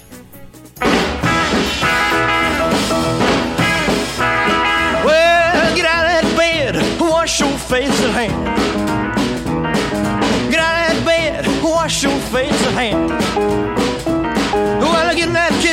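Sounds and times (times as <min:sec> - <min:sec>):
1950s rock and roll record with singer over driving band: 0:00.0 - 0:15.7.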